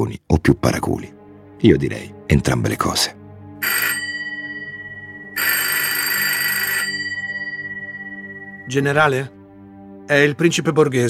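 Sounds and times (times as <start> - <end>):
speech: 0.0 - 4.1, 8.7 - 9.4, 10.1 - 11.0
telephone bell ringing: 3.6 - 8.7.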